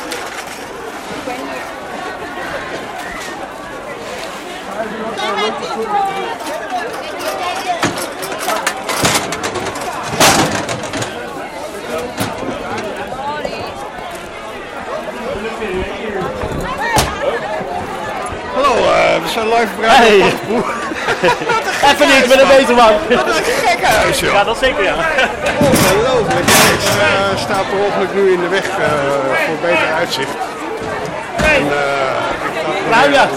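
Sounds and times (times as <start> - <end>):
dense crowd chatter: 0.0 - 33.3
speech: 5.5 - 7.6, 18.7 - 30.4, 32.9 - 33.3
sharp knocks and clatters: 7.8 - 11.2, 25.5 - 27.6
laughter: 19.9 - 29.0.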